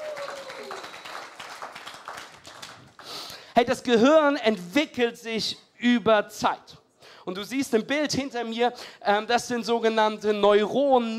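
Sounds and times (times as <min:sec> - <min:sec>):
crowd applause: 0:00.0 - 0:03.2
speech: 0:03.6 - 0:11.1.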